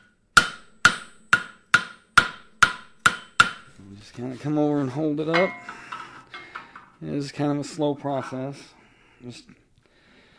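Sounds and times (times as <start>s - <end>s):
hammer shaping glowing hot metal on an anvil: 0.0s - 3.7s, 5.3s - 6.6s
speech: 3.9s - 5.8s, 7.0s - 9.6s.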